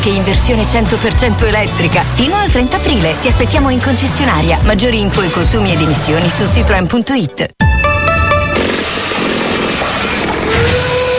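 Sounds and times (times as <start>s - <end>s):
speech: 0.0s - 7.6s
high pulsing motor whine of power tools on a construction site: 8.6s - 11.1s.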